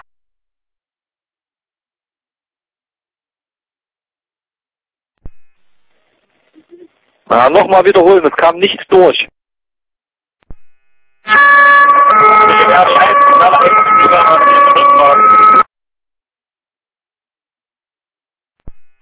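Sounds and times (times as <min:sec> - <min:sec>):
speech: 0:07.3 - 0:09.3
wailing siren in the background of a radio transmission: 0:11.3 - 0:15.7.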